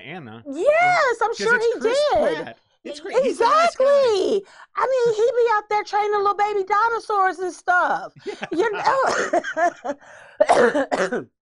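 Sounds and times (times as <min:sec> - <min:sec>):
speech: 0:00.0 - 0:11.4
laughter: 0:08.2 - 0:10.1
person coughing harshly: 0:08.3 - 0:09.5, 0:10.4 - 0:11.3.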